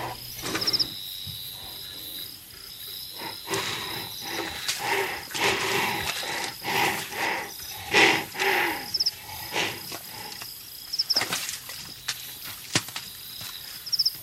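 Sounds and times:
northern white rhinoceros vocalizing in harsh breathy bursts and rumbling snorts: 0:00.0 - 0:10.8
insects chirping: 0:00.0 - 0:14.2.

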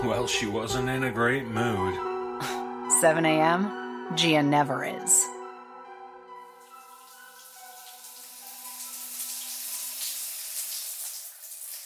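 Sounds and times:
speech: 0:00.0 - 0:05.2
shower water running: 0:06.5 - 0:11.8.

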